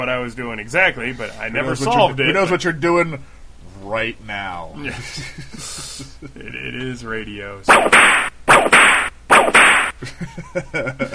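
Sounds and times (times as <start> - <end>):
speech: 0.0 - 8.3, 10.1 - 11.1
sharp whip cracks with hissing tails: 7.7 - 10.0.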